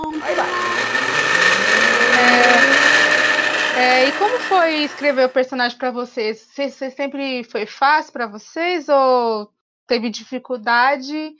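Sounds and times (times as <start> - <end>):
speech: 0.0 - 0.7, 3.8 - 11.3
blender blending chicken stroganoff with rice: 0.0 - 5.4.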